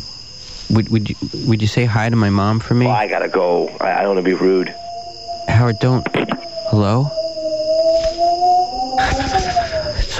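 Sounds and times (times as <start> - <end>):
speech: 0.7 - 4.8, 5.6 - 7.2
long steady wolf howl: 4.0 - 10.1.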